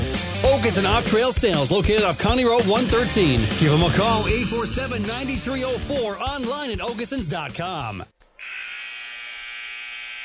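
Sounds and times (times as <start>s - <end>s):
speech: 0.6s - 8.6s
electronic gym scoreboard buzzer ending a set of a match: 8.4s - 10.2s.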